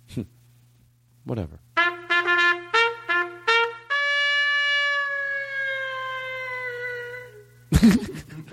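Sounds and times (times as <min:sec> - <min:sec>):
speech: 0:00.2 - 0:00.4, 0:01.2 - 0:01.9, 0:07.8 - 0:08.3
solo trumpet played into a microphone with reverb: 0:01.8 - 0:07.3
laughter: 0:07.7 - 0:08.5.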